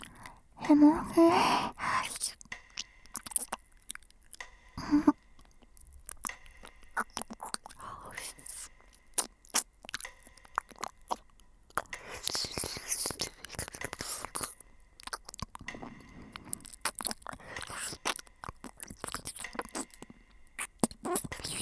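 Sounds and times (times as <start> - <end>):
quiet whispering: 0.0 - 2.5, 4.8 - 5.2, 7.0 - 9.3, 11.8 - 20.0, 20.6 - 21.6
speech: 0.7 - 1.8
ear-licking wet mouth smacks, slurps and clicks: 2.0 - 21.6.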